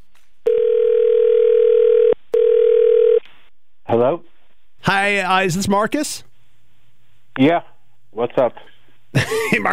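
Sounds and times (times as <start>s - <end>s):
telephone ringing tone: 0.5s - 3.2s
speech: 4.9s - 6.3s, 7.4s - 9.7s.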